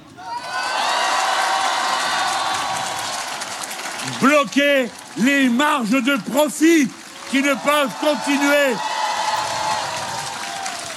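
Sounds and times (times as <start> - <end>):
crowd whooping and shouting: 0.2 - 4.3, 7.2 - 10.9
large crowd applauding: 0.3 - 10.9
speech: 4.2 - 8.9.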